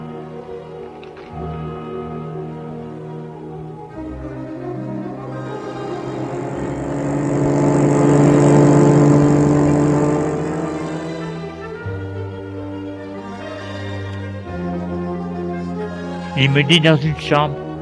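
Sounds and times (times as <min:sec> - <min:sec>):
car engine revving and pulling away: 0:04.6 - 0:12.8
speech: 0:16.4 - 0:17.6.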